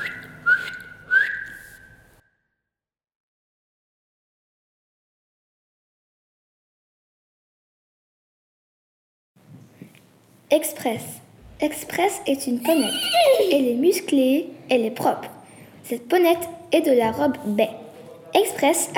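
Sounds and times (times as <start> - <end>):
person whistling a two-note phrase: 0.0 - 2.2
speech: 10.5 - 18.9
laughter: 12.6 - 13.6.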